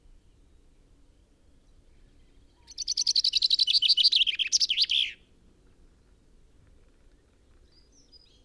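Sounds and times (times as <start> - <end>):
common chaffinch Fringilla coelebs singing: 2.6 - 5.2.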